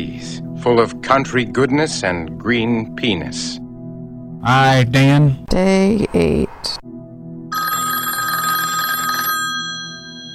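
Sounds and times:
speech: 0:00.0 - 0:03.6, 0:04.4 - 0:06.8
cell phone ringing during a movie screening: 0:07.5 - 0:10.3.

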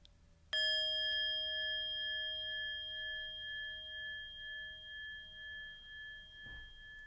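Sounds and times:
hanging meditation bell struck and ringing: 0:00.6 - 0:07.0.

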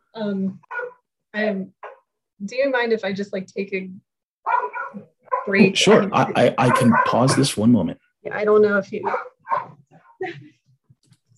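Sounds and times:
speech: 0:00.2 - 0:01.8, 0:02.4 - 0:04.1, 0:04.9 - 0:10.6
sharp harmonic dog barks: 0:00.6 - 0:01.0, 0:01.8 - 0:02.0, 0:04.4 - 0:07.8, 0:09.0 - 0:09.8.

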